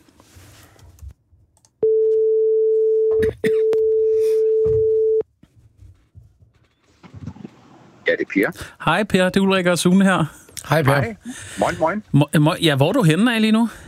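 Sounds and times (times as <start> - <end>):
phone line ringback tone: 1.8 - 5.2
speech: 8.4 - 13.8.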